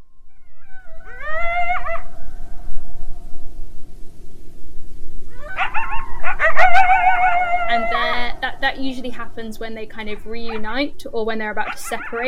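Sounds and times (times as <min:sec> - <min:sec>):
animal wavering rising howl: 0:00.3 - 0:02.8, 0:05.3 - 0:08.4
group of animals in a chorus of high yips and quavering howls: 0:00.4 - 0:02.5, 0:05.3 - 0:08.1
speech: 0:08.8 - 0:12.2.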